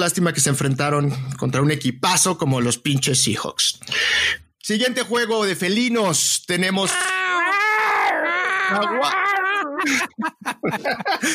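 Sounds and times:
speech: 0:00.0 - 0:07.2, 0:08.7 - 0:11.3
voices imitating yowling cats in heat: 0:06.8 - 0:09.9
laughter: 0:08.7 - 0:11.3.

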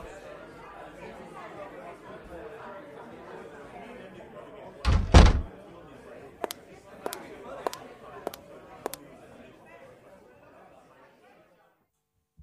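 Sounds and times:
low murmur of voices: 0:00.0 - 0:11.9
door opening with a heavy thud: 0:04.9 - 0:05.5.

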